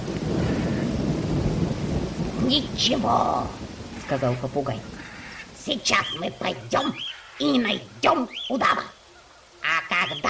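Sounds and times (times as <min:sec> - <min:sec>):
thunder rolling after a lightning flash: 0:00.0 - 0:07.9
steady rain hissing: 0:00.0 - 0:10.2
speech: 0:02.5 - 0:04.9, 0:05.6 - 0:09.0, 0:09.7 - 0:10.2.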